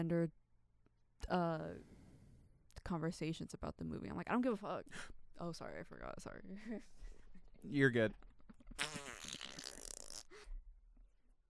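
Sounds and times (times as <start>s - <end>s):
speech: 0.0s - 0.4s, 1.2s - 1.9s, 2.8s - 9.2s
loud sputtering buzzy wet fart: 8.6s - 10.5s.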